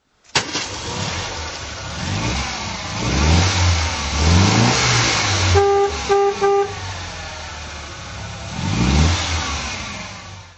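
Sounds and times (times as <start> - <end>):
MGA 1500 engine throttle: 0.4 - 10.5.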